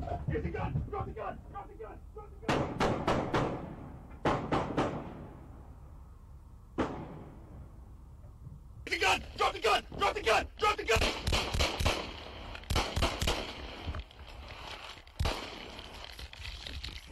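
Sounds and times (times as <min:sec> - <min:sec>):
voices: 0:00.1 - 0:02.6, 0:08.9 - 0:11.1
gunshots fired by a police officer at an armed suspect, body cam recording: 0:02.5 - 0:05.4, 0:06.8 - 0:07.5, 0:10.9 - 0:14.0, 0:15.2 - 0:16.1.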